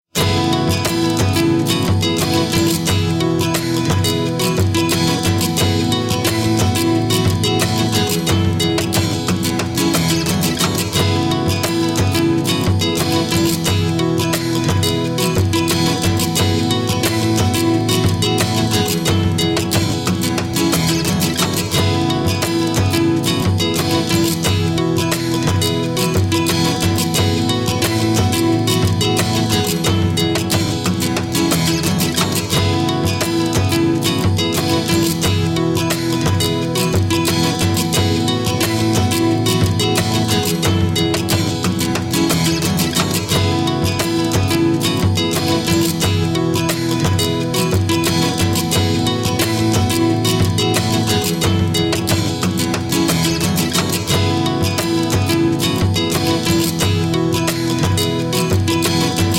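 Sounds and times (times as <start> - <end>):
refreshing acoustic guitar background music at 89 BPM: 0.0 - 59.3.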